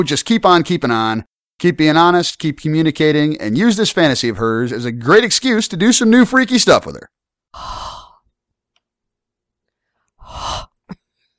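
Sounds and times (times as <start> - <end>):
speech: 0.0 - 8.0
heavy mouth breathing into a microphone: 7.6 - 8.2, 10.0 - 11.0.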